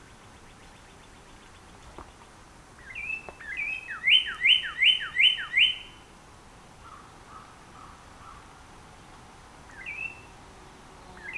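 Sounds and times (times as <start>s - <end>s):
Northern Cardinal whistled song: 2.9s - 5.9s.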